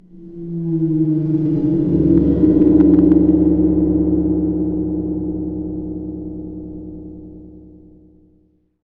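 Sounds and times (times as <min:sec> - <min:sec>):
cymbal gong: 0:00.0 - 0:08.5.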